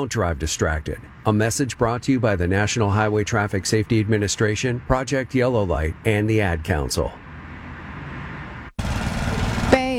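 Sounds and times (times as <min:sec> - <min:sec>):
speech: 0:00.0 - 0:07.2
power lawn mower engine droning on a hot dry day: 0:07.4 - 0:09.9.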